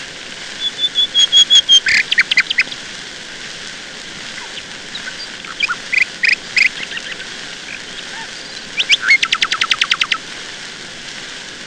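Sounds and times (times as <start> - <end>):
background hiss: 0.0 - 11.6
nightingale singing: 0.6 - 2.8, 4.2 - 10.2.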